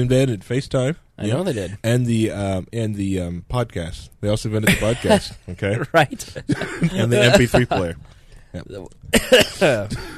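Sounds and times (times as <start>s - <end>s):
speech: 0.0s - 10.1s
person coughing: 9.2s - 10.1s.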